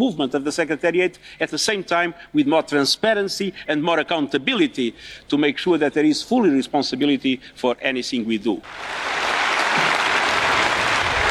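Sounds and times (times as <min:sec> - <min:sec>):
speech: 0:00.0 - 0:09.9
large assembly audience applauding: 0:08.6 - 0:11.2.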